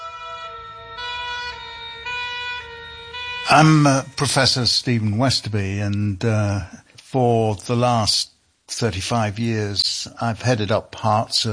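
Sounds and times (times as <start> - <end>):
two-tone ambulance siren: 0.0 - 5.5
speech: 3.5 - 11.5.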